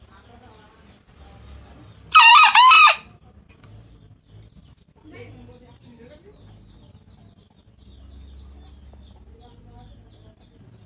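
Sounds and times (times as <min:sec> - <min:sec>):
green junglefowl giving a short rasping crow: 0:02.1 - 0:03.1
faint junglefowl call: 0:02.1 - 0:03.2.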